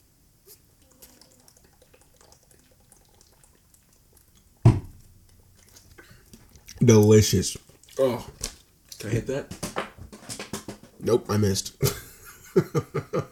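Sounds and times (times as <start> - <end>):
person drinking water sipping and swallowing: 0.4 - 6.9
speech: 6.8 - 8.4, 9.1 - 9.6, 11.0 - 12.0, 12.6 - 13.3
laughter: 11.8 - 13.3.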